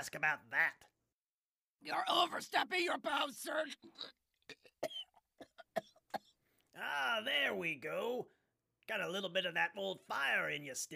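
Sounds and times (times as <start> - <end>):
speech: 0.0 - 0.9, 1.8 - 5.0, 6.8 - 10.9
person in a harsh coughing fit: 3.8 - 6.4.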